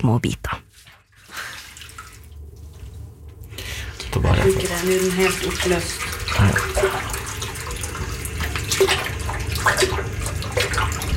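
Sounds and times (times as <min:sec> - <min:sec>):
speech: 0:00.0 - 0:00.6, 0:04.2 - 0:07.2, 0:08.8 - 0:11.0
warm water pouring into a sink over a paper report: 0:01.2 - 0:02.4, 0:03.9 - 0:11.1.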